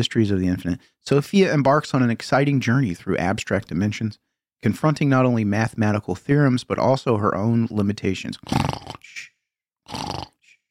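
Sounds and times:
speech: 0:00.0 - 0:09.3, 0:09.9 - 0:10.3
person faking exaggerated snoring: 0:08.4 - 0:09.2, 0:09.9 - 0:10.6.

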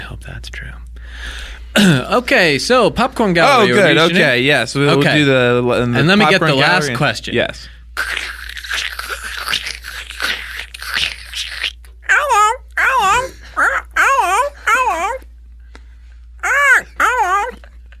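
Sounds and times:
speech: 0:00.2 - 0:08.2
person imitating a bird call with warbling tones: 0:08.0 - 0:15.2, 0:16.4 - 0:17.6.

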